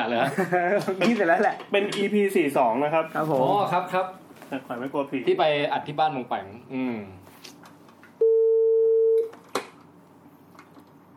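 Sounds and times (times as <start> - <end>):
speech: 0.0 - 7.6
telephone line tone while calling someone back: 8.2 - 9.3.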